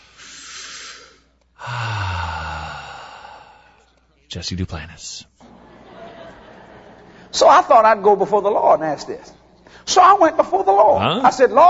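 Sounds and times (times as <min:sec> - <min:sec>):
group taking deep cleansing breaths together: 0:00.0 - 0:04.1
speech: 0:01.6 - 0:01.9, 0:04.3 - 0:05.3, 0:07.4 - 0:11.6
laughter: 0:05.4 - 0:07.4.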